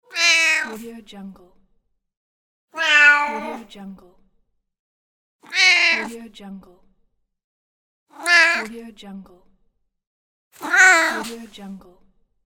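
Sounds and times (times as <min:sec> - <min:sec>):
adult cat meowing: 0:00.1 - 0:00.8, 0:02.8 - 0:03.7, 0:05.4 - 0:06.1, 0:08.2 - 0:08.7, 0:10.6 - 0:11.3.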